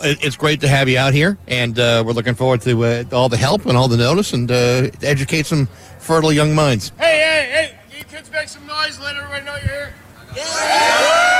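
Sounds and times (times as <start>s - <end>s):
speech: 0.0s - 11.3s
group of high school kids cheering and yelling: 10.3s - 11.3s.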